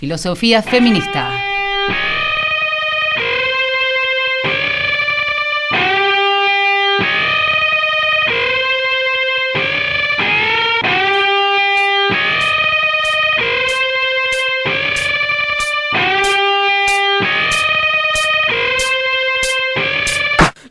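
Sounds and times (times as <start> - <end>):
speech: 0.0 - 2.2
heavily processed tonal notes of a music track: 0.6 - 20.4
sharp bright percussive hits in a steady beat: 10.9 - 20.6.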